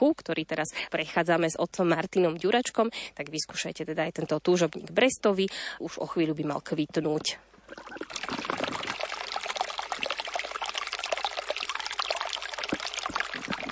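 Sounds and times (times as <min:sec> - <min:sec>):
speech: 0:00.0 - 0:08.4
small brook trickling and burbling: 0:07.7 - 0:13.6.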